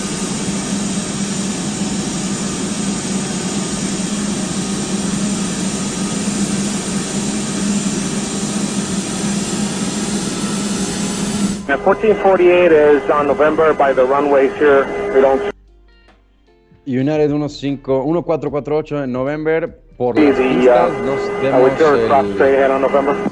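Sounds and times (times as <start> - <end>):
jet engine roar of a cargo jet taking off from the runway: 0.0 - 15.5, 20.2 - 23.2
speech: 11.8 - 15.5, 16.9 - 23.2.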